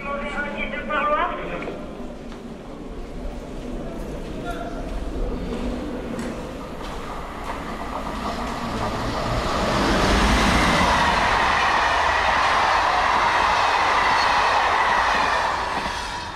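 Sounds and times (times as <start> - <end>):
train passing on railway tracks beside a prison: 0.0 - 16.3
faint rhythmic rattle of train wheels: 4.2 - 13.0.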